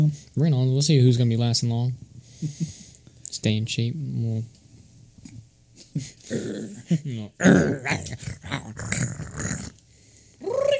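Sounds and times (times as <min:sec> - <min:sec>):
speech: 0:00.0 - 0:04.6, 0:06.0 - 0:09.6
dog growling and snarling: 0:06.3 - 0:09.8.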